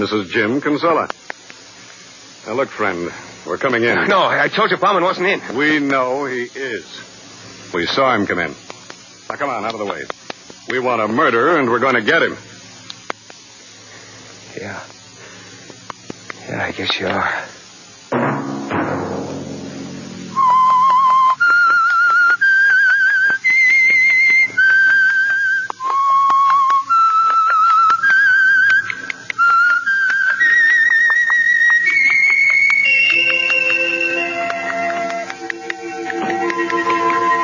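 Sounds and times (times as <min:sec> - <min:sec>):
speech: 0:00.0 - 0:01.3, 0:02.4 - 0:07.1, 0:07.7 - 0:08.7, 0:09.3 - 0:12.5, 0:14.6 - 0:15.0, 0:16.5 - 0:17.5
lone whistled theme tune melody: 0:20.3 - 0:37.4
faint orchestral backing: 0:31.8 - 0:37.4.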